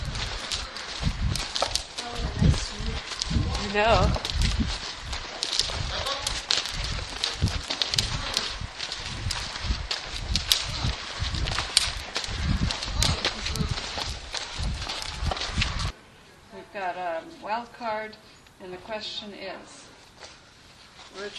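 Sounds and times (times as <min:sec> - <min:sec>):
faint rustle of movement: 0:00.0 - 0:16.0, 0:19.8 - 0:21.3
mare's hooves at an extended walk: 0:00.0 - 0:16.0
speech: 0:03.7 - 0:04.3, 0:17.7 - 0:19.8, 0:21.2 - 0:21.3.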